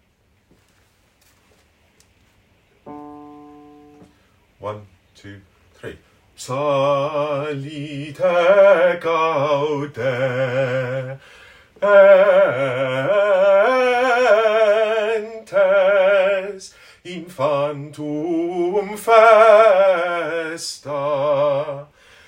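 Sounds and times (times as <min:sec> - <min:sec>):
bass voice singing: 0:06.4 - 0:11.2, 0:11.8 - 0:21.9.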